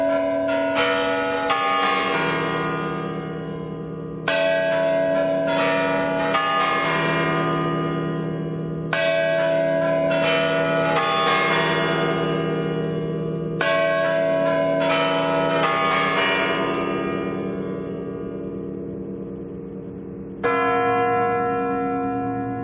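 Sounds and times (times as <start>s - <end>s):
Spasskaya Tower clock bell chimes: 0.0s - 22.6s.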